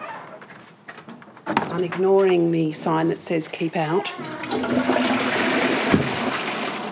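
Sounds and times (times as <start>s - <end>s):
speech: 1.7s - 5.0s
toilet flushing: 4.3s - 6.8s.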